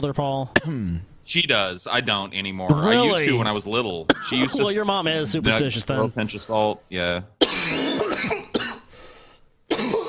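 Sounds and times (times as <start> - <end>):
speech: 0.0 - 8.5
person coughing harshly: 0.6 - 1.0, 4.1 - 4.7, 7.4 - 8.9, 9.7 - 10.0.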